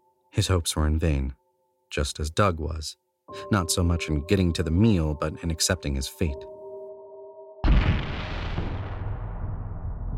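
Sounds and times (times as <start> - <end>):
speech: 0.4 - 6.5
loud deep explosion-like bang with rumbling roar: 7.6 - 10.1.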